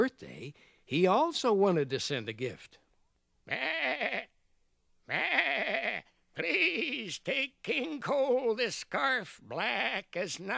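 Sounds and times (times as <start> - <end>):
speech: 0.0 - 2.8, 3.5 - 4.3, 5.1 - 5.7, 6.4 - 10.5
sheep bleating: 3.5 - 4.3, 5.1 - 7.1, 9.5 - 10.2.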